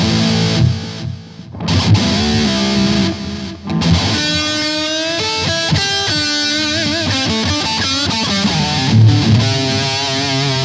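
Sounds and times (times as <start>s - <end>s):
distorted electric guitar through Metal Zone distortion and DD3 delay pedal: 0.0s - 10.6s.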